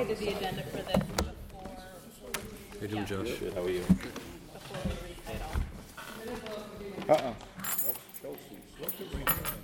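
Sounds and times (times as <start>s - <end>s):
speech: 0.0s - 1.4s, 2.8s - 5.0s, 6.2s - 7.5s
bunch of keys jangling: 7.6s - 9.6s.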